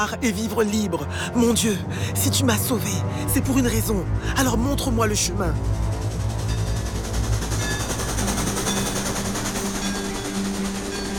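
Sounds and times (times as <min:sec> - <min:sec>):
speech: 0:00.0 - 0:05.9
early steam train rumbling along the rails in the eastern United States: 0:03.4 - 0:11.1.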